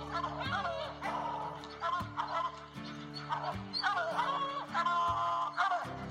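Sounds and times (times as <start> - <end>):
hunting hounds baying and barking at a bear: 0.0 - 6.0.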